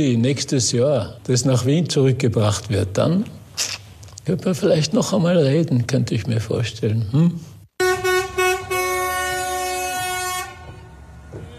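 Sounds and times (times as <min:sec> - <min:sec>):
speech: 0:00.0 - 0:07.5
bus horn honking: 0:07.8 - 0:11.5.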